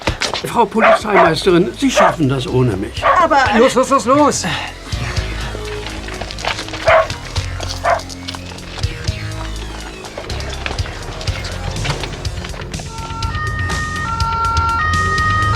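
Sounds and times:
speech: 0.4 - 4.8
dog barking: 0.7 - 12.3
moving car rumble: 0.8 - 14.8
two-tone police siren wailing: 0.8 - 15.5.

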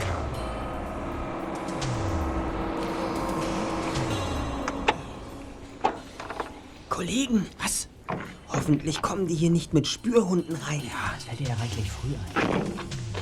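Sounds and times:
van engine rumbling as it slows to a halt: 0.0 - 6.9
speech: 7.0 - 7.9, 8.5 - 13.0.

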